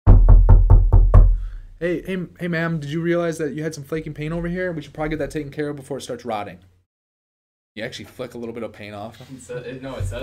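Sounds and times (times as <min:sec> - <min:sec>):
knocking on a door with deep hollow thuds: 0:00.1 - 0:01.5
speech: 0:01.8 - 0:06.7, 0:07.8 - 0:10.2.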